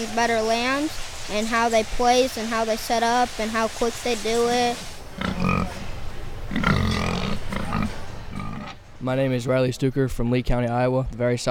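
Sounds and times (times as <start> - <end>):
speech: 0.0 - 5.3, 9.0 - 11.5
barn noise: 4.6 - 9.0
pig grunting while being weighed: 5.1 - 5.9, 6.5 - 8.8.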